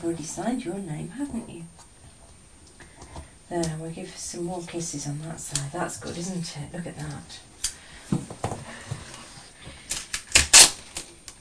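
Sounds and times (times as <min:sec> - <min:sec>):
speech: 0:00.0 - 0:01.9, 0:03.5 - 0:07.5
sticky tape being cut for wrapping a present: 0:09.9 - 0:11.1.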